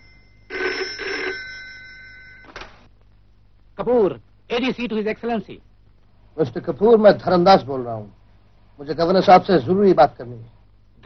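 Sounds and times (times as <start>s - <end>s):
telephone bell ringing: 0.0s - 2.9s
speech: 3.8s - 5.7s, 6.4s - 8.2s, 8.8s - 11.0s.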